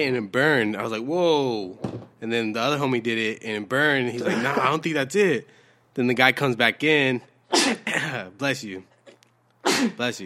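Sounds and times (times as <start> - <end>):
speech: 0.0 - 8.9, 9.7 - 10.2
person sneezing: 7.5 - 8.3, 9.6 - 10.0.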